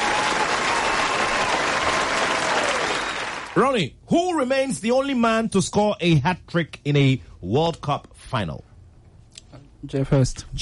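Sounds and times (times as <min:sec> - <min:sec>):
applause from a small group for a quiz contestant: 0:00.0 - 0:03.6
speech: 0:03.6 - 0:08.7, 0:09.8 - 0:10.6.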